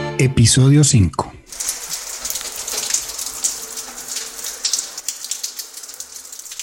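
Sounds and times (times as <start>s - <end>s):
speech: 0.2s - 1.7s
steady rain falling: 1.5s - 6.6s.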